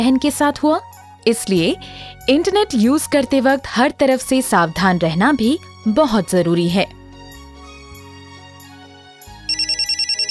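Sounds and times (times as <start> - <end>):
speech: 0.0 - 7.0
phone ringtone for an incoming call: 9.5 - 10.2.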